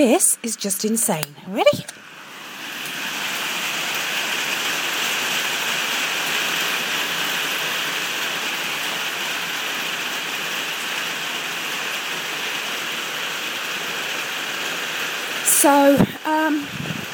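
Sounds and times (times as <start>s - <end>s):
speech: 0.0s - 2.1s, 15.6s - 16.9s
very heavy rain pouring outside in the UK: 0.0s - 17.1s.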